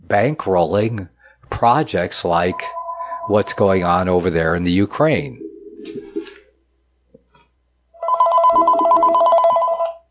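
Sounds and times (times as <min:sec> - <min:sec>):
speech: 0:00.1 - 0:06.0
telephone ringing with a bright electronic trill for an incoming call: 0:02.5 - 0:04.0, 0:08.0 - 0:10.0.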